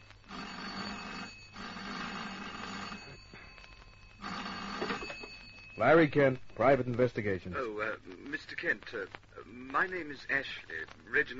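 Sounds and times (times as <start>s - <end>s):
telephone bell ringing: 0.0s - 6.2s
speech: 5.8s - 11.3s.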